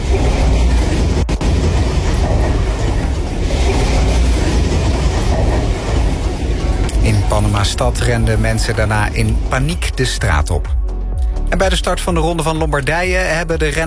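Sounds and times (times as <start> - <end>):
earthquake rumble: 0.0 - 10.6
speech: 7.6 - 10.8, 11.5 - 13.8.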